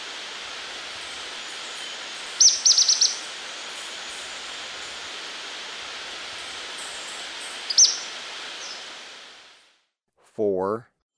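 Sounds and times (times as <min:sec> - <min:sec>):
steady hiss: 0:00.0 - 0:09.7
ornate flycatcher calling in Ecuador: 0:00.7 - 0:09.0
speech: 0:10.4 - 0:10.9.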